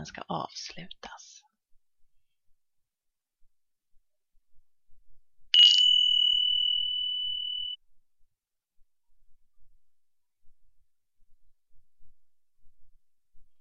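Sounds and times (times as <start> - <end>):
speech: 0.0 - 1.3
single clear bell chime struck to start an exercise: 5.6 - 7.8.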